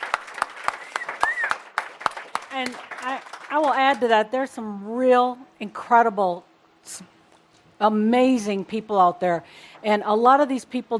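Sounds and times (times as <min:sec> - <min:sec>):
audience clapping rhythmically: 0:00.0 - 0:04.2
speech: 0:02.6 - 0:07.2, 0:07.8 - 0:10.9.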